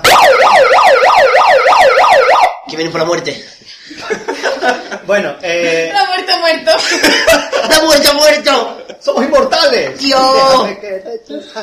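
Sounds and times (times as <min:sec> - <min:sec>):
ambulance siren wailing in rising-and-falling sweeps: 0:00.0 - 0:02.7
speech: 0:02.8 - 0:11.6
laughter: 0:03.6 - 0:09.5.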